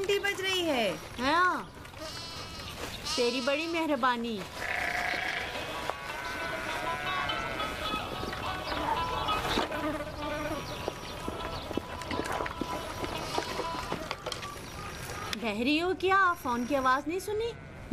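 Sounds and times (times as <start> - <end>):
speech: 0.6 - 2.2, 3.2 - 4.6, 15.4 - 17.9
sheep bleating in a sheep pen: 2.0 - 4.0, 4.6 - 8.1, 8.8 - 14.2
insects buzzing: 4.7 - 12.8.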